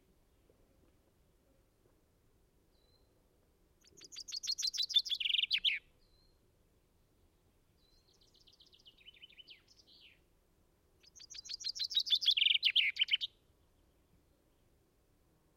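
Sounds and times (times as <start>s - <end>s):
common chaffinch Fringilla coelebs song: 3.8s - 14.9s.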